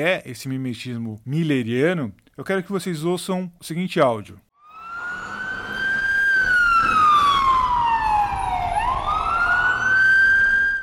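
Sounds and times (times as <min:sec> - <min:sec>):
speech: 0:00.0 - 0:04.4
emergency vehicle siren wailing: 0:04.6 - 0:10.8
road rumble: 0:04.7 - 0:10.8.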